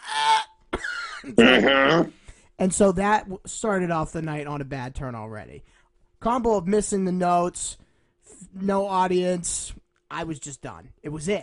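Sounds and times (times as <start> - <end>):
person clearing throat with cheese stuck in it: 0.7 - 2.2
speech: 1.2 - 11.4.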